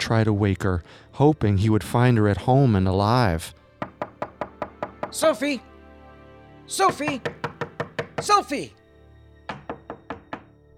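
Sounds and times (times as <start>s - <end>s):
speech: 0.1s - 3.6s, 5.1s - 5.7s, 6.7s - 7.5s, 8.2s - 8.8s
knocking on a neighbor's front door: 3.8s - 5.2s, 6.8s - 8.5s, 9.5s - 10.6s.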